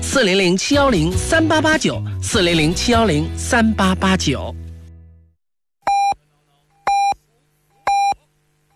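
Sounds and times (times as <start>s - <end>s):
speech: 0.1s - 4.6s
electronic radio time signal beeps in Jiangsu: 6.9s - 7.2s, 7.9s - 8.3s.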